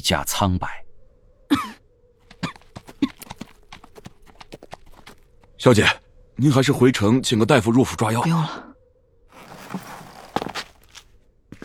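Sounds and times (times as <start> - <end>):
speech: 0.0 - 0.8, 5.6 - 8.7
weary pale man coughing quietly: 1.5 - 3.4
horse hooves clip-clopping: 2.2 - 5.4, 9.4 - 11.1.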